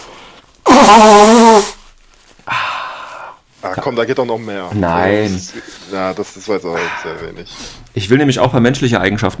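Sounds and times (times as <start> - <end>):
person blowing nose hard into a tissue: 0.6 - 2.0
speech: 0.8 - 1.7, 3.8 - 9.3.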